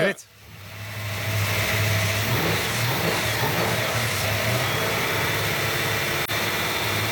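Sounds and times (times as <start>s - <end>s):
car engine running after extensive work: 0.3s - 7.0s.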